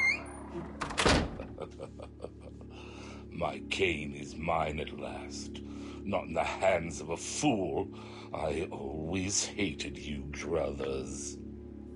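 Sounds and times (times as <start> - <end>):
door opening and shutting: 0.0 - 1.6
speech: 0.6 - 0.8, 1.6 - 11.4
laughter: 1.4 - 3.0.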